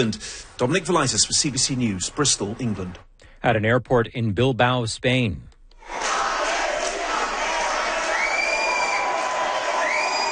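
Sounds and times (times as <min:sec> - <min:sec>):
speech: 0:00.0 - 0:06.0
large crowd of pro-Palestinian activists chanting and cheering at an airport in Bilbao Spain: 0:05.8 - 0:10.2
whoops and shouts from activists at an airport in Bilbao Spain: 0:07.8 - 0:10.2.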